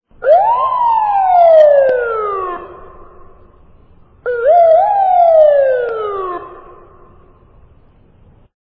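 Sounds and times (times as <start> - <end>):
police patrol car siren: 0.2 - 3.6, 4.2 - 7.6.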